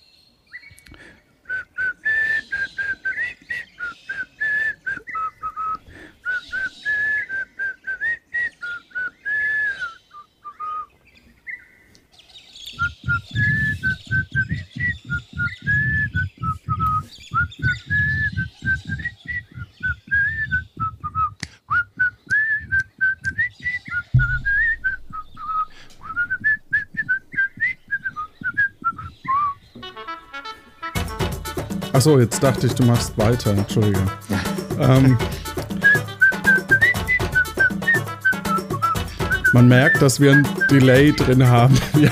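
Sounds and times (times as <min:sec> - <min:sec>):
person whistling a melody: 0:01.5 - 0:10.9, 0:12.7 - 0:29.6, 0:32.3 - 0:42.1
low rumbling background: 0:24.1 - 0:29.5
speech: 0:32.0 - 0:35.4, 0:39.5 - 0:42.1
laughter: 0:32.4 - 0:35.6, 0:41.3 - 0:42.1.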